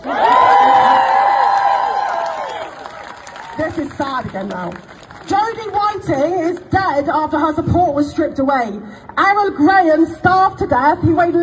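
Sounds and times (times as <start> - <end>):
audience cheering: 0.0 - 5.3
audience clapping: 0.2 - 5.3
speech: 3.8 - 11.4.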